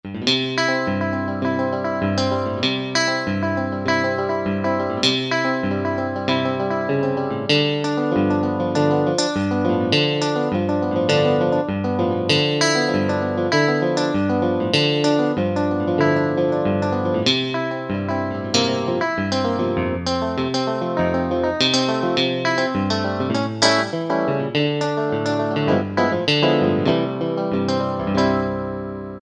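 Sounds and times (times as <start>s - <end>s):
clean picked notes: 0.1s - 29.2s.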